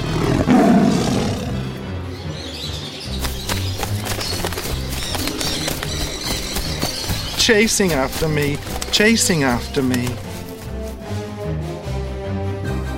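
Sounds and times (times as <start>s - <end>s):
lion roaring: 0.0s - 1.7s
dense wild-animal backdrop: 0.0s - 12.6s
speech: 7.4s - 10.2s.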